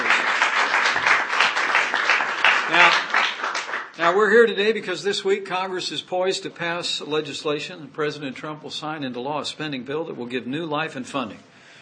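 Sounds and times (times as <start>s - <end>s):
crowd applauding: 0.0s - 4.2s
speech: 4.0s - 11.5s.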